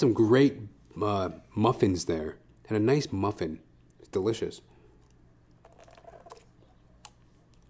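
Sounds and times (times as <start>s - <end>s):
speech: 0.0s - 4.7s
faint steady hum: 0.0s - 7.6s
person sipping coffee: 4.7s - 7.6s
swallow: 5.0s - 7.6s.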